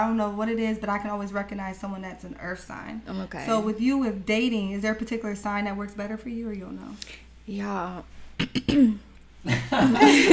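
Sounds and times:
speech: 0:00.0 - 0:10.3
person clearing throat: 0:08.4 - 0:09.1
laughter: 0:09.5 - 0:10.3.

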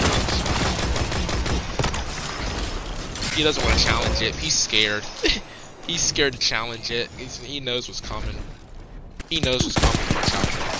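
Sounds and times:
rapid gunfire in a multiplayer video game match: 0:00.0 - 0:02.5, 0:09.5 - 0:10.7
speech: 0:03.4 - 0:08.6, 0:09.3 - 0:10.4.

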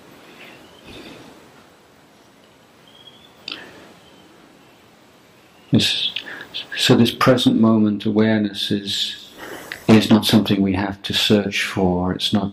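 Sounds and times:
faint bird chirps outdoors: 0:00.3 - 0:01.3, 0:02.0 - 0:06.8
speech: 0:05.7 - 0:09.2, 0:09.9 - 0:12.5.

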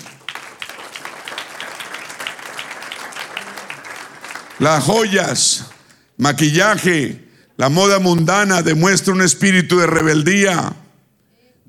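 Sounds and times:
church audience applause during a sermon: 0:00.0 - 0:05.8
speech: 0:04.6 - 0:10.8.

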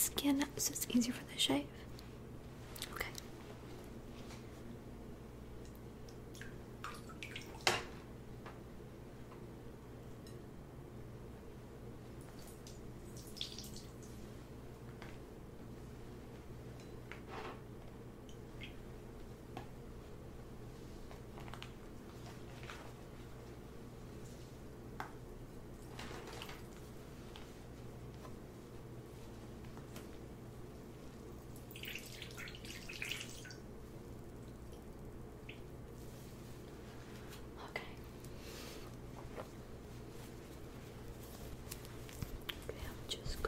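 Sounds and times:
steady low hum: 0:00.0 - 0:43.4
speech: 0:00.1 - 0:01.9
warm water dripping from soaked towel pressed on a face: 0:05.6 - 0:07.6, 0:12.2 - 0:14.2, 0:31.6 - 0:33.7.

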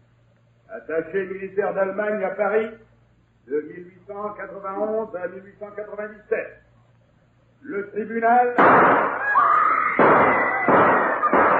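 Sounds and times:
speech: 0:00.7 - 0:02.9, 0:03.5 - 0:06.6, 0:07.6 - 0:09.2
gunshots in a courtroom: 0:08.6 - 0:09.2, 0:10.0 - 0:11.5.

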